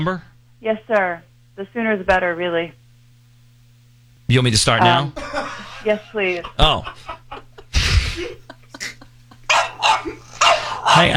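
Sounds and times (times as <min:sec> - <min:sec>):
speech: 0:00.0 - 0:02.8, 0:04.3 - 0:07.2, 0:10.9 - 0:11.1
faint steady hum: 0:00.0 - 0:11.1
laughter: 0:04.8 - 0:11.1
dog barking loudly: 0:09.5 - 0:10.9.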